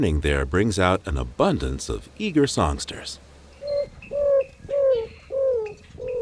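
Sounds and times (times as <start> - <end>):
speech: 0.0 - 3.3
greater roadrunner cooing song: 3.6 - 6.2.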